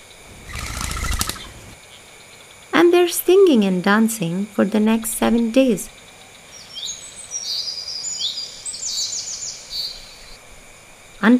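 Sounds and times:
birds flapping wings: 0:00.3 - 0:01.8
speech: 0:03.0 - 0:06.0.

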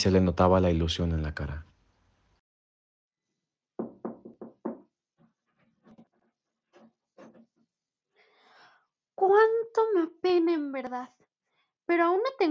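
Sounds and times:
speech: 0:00.0 - 0:01.7, 0:09.2 - 0:11.2, 0:11.9 - 0:12.4
knocking on a door: 0:03.8 - 0:04.9.

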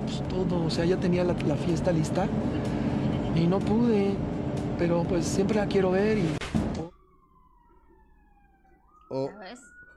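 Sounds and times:
speech: 0:00.3 - 0:06.5, 0:09.1 - 0:09.7
malfunctioning police car siren droning as one steady tone: 0:05.5 - 0:09.9.

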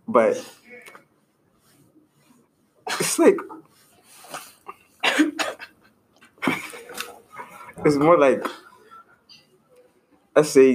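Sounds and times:
speech: 0:00.1 - 0:00.6, 0:02.9 - 0:03.7, 0:07.8 - 0:08.6, 0:10.4 - 0:10.7
person coughing: 0:04.7 - 0:05.7, 0:06.4 - 0:07.0
laughter: 0:05.6 - 0:09.3.

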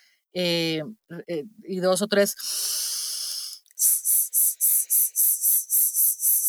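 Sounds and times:
speech: 0:00.3 - 0:03.1
breathy shushing hiss as a vocal warm-up: 0:02.4 - 0:06.4.

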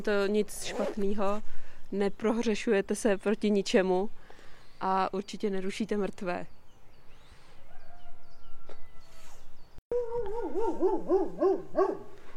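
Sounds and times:
speech: 0:00.0 - 0:04.2, 0:04.8 - 0:06.6, 0:10.6 - 0:12.2
dog in Nezdice howling: 0:10.0 - 0:12.0.

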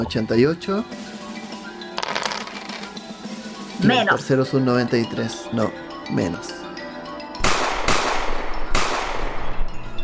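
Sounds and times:
speech: 0:00.0 - 0:01.2, 0:03.8 - 0:06.6
gunshot blasts: 0:07.4 - 0:09.3.

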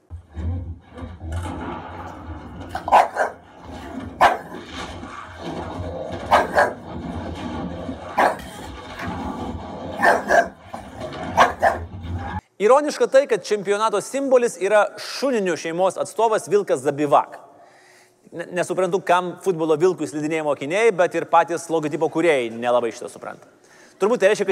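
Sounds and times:
stray dogs barking: 0:02.8 - 0:03.4, 0:04.2 - 0:04.6, 0:06.3 - 0:06.8, 0:08.2 - 0:08.6, 0:10.0 - 0:10.6, 0:11.3 - 0:11.9
speech: 0:12.6 - 0:17.4, 0:18.3 - 0:24.5.

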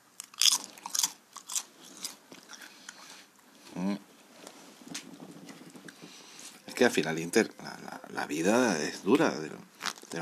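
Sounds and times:
someone crunching potato chips: 0:00.0 - 0:03.0
chewing: 0:00.2 - 0:03.4
speech: 0:06.8 - 0:10.1.

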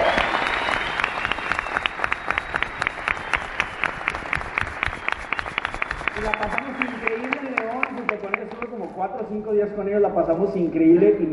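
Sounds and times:
audience applause: 0:00.0 - 0:08.9
speech: 0:09.3 - 0:11.3.

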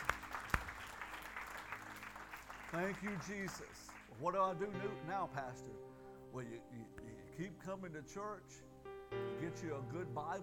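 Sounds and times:
audience applause: 0:00.0 - 0:04.4
speech: 0:02.7 - 0:10.4.

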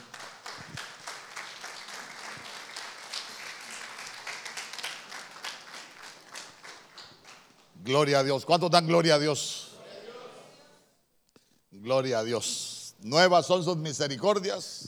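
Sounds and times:
large crowd applauding: 0:00.0 - 0:07.8
speech: 0:07.9 - 0:09.6, 0:11.9 - 0:14.8.

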